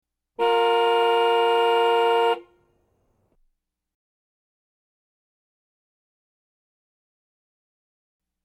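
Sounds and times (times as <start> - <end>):
car horn long honks: 0.4 - 2.6.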